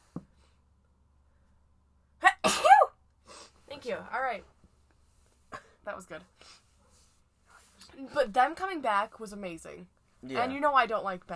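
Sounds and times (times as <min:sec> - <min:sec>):
person sneezing: 0:02.2 - 0:03.4
speech: 0:03.9 - 0:04.6, 0:05.9 - 0:06.6, 0:08.0 - 0:11.3.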